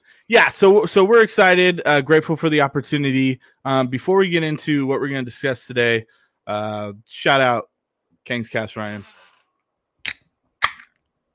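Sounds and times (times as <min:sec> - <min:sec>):
speech: 0:00.3 - 0:09.2
beer can being cracked open: 0:10.0 - 0:11.0.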